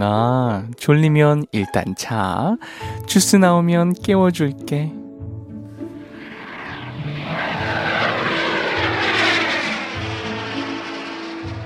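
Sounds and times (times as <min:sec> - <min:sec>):
speech: 0:00.0 - 0:05.0
airplane engine roar as the aircraft takes off: 0:05.7 - 0:11.6.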